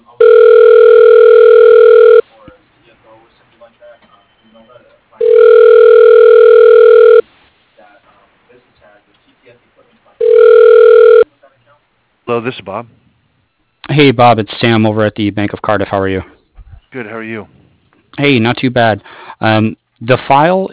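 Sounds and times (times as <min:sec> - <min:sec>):
telephone ringback tone on an outgoing call from a bank's phone system: 0:00.2 - 0:02.2, 0:05.2 - 0:07.2, 0:10.2 - 0:11.2
speech: 0:12.4 - 0:13.0, 0:14.0 - 0:17.6, 0:18.2 - 0:20.7.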